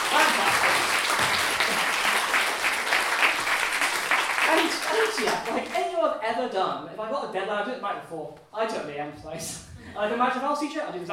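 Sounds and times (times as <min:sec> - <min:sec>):
group applauding: 0:00.0 - 0:05.9
speech: 0:05.1 - 0:11.1.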